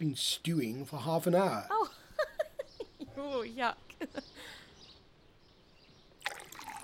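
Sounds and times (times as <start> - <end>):
speech: 0.0 - 2.0, 3.2 - 4.6
water pouring into a glass: 6.2 - 6.8.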